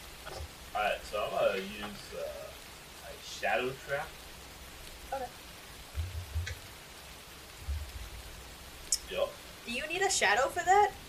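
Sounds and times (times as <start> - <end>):
steady rain falling: 0.0 - 11.0
speech: 1.6 - 2.5, 3.1 - 4.2, 5.1 - 5.4, 9.1 - 11.0
dull low thumps and rumbles: 5.7 - 6.8, 7.5 - 8.5.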